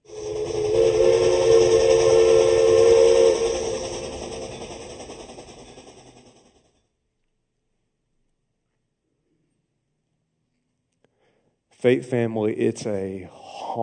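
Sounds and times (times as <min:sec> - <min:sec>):
steam train whistle blowing: 0:00.0 - 0:05.9
rumble and hiss of the moving steam train: 0:00.0 - 0:06.7
speech: 0:11.8 - 0:13.8.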